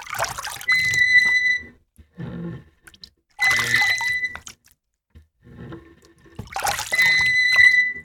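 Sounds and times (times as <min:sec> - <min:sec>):
water splashing from cupped hands scooping between a bowl and a bucket: 0:00.0 - 0:01.3, 0:02.8 - 0:04.8, 0:06.3 - 0:07.9
softer low sloshing water: 0:00.0 - 0:08.0
high creaking squeak of a squeaking screw: 0:00.6 - 0:02.6, 0:03.4 - 0:04.4, 0:05.5 - 0:08.0.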